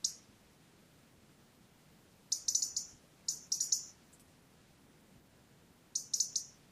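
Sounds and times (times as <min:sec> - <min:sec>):
European robin Erithacus rubecula giving ticking calls: 0:00.0 - 0:00.3, 0:02.3 - 0:04.3, 0:05.9 - 0:06.7
quiet background hiss: 0:00.0 - 0:06.7.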